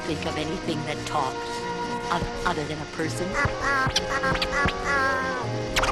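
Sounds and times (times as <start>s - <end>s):
speech: 0.1s - 5.7s
bird calling with harsh nasal quacking cries: 3.1s - 5.9s.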